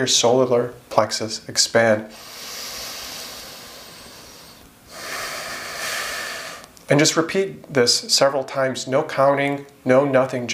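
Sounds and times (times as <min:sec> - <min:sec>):
speech: 0:00.0 - 0:02.4, 0:06.9 - 0:10.5
deep slow breathing during a guided meditation: 0:02.1 - 0:06.8.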